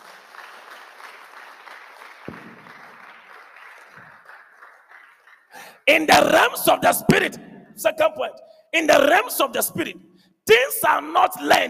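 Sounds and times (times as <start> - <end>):
audience applause: 0.0 - 5.8
sharp thud: 2.3 - 2.9
speech: 5.9 - 11.6.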